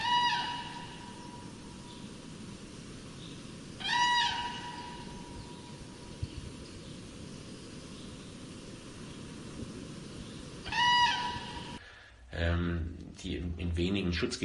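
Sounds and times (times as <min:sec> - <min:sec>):
bugling crane calls: 0:00.0 - 0:01.8, 0:03.8 - 0:06.0, 0:10.6 - 0:11.8
soft steady outdoor background: 0:00.0 - 0:14.4
speech: 0:12.6 - 0:14.4.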